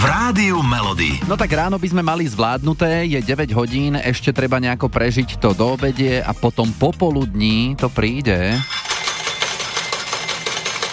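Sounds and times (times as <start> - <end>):
speech: 0.1 - 8.9
coins falling and clinking: 8.4 - 10.9.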